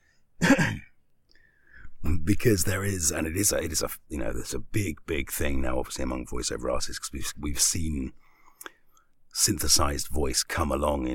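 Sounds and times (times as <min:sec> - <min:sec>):
throat clearing: 0:00.4 - 0:01.0
speech: 0:02.3 - 0:08.7, 0:09.4 - 0:11.1.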